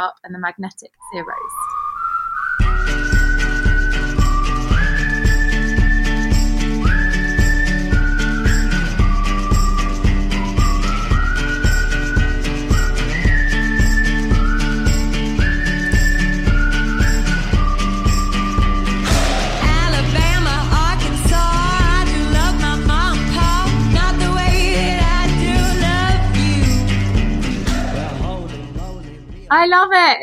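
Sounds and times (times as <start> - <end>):
speech: 0.0 - 1.8, 29.5 - 30.2
bright whistled melody in a folk song: 1.0 - 29.4
regular thumping beat: 2.6 - 29.6
upbeat folk band with strummed instruments: 3.1 - 29.3.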